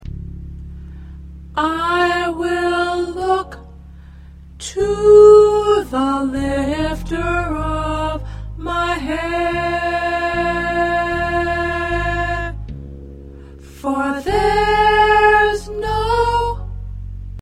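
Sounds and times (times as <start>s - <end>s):
soprano singing: 1.6s - 3.7s, 4.6s - 12.7s, 13.7s - 16.8s.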